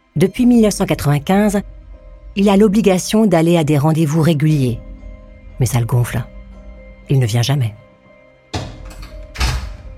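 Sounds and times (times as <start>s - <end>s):
speech: 0.2s - 1.8s, 2.4s - 4.9s, 5.6s - 6.3s, 7.1s - 7.8s
door opening with a sharp thunk and latch rattle: 8.5s - 9.9s.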